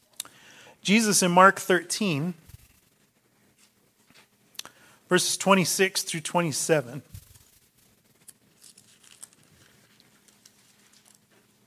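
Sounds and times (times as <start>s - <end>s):
speech: 0.8s - 2.4s, 5.1s - 7.2s
audience turning Bible pages in a large room: 7.1s - 11.6s.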